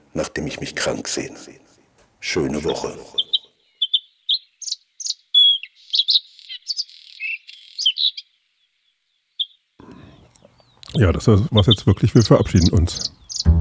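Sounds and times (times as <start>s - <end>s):
speech: 0.2s - 3.3s, 11.0s - 13.2s
songbird singing: 2.6s - 13.5s.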